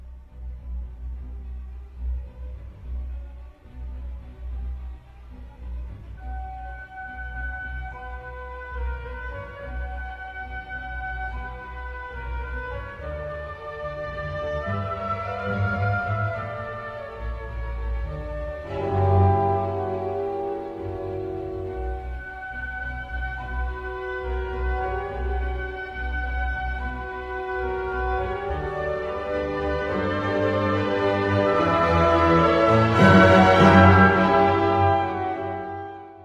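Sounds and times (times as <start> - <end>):
orchestra strings playing a chord progression: 0.0 - 36.2
oboes and clarinets carrying the melody of the main theme: 0.1 - 36.2.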